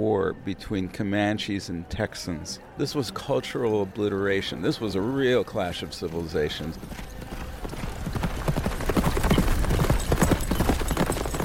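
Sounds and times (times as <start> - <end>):
speech: 0.0 - 7.2
ridden horse galloping through tall prairie grass in Texas: 5.4 - 11.4.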